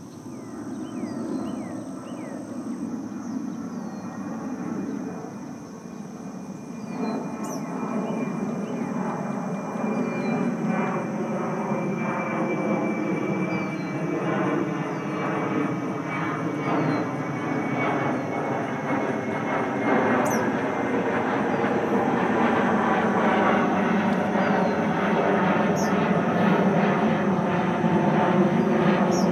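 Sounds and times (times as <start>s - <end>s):
thin high insect or bird chirps at a marsh preserve: 0.0s - 11.6s, 13.1s - 18.8s, 20.0s - 20.6s, 25.6s - 26.2s, 28.5s - 29.3s
low airplane rumble over a marsh preserve: 0.0s - 29.3s.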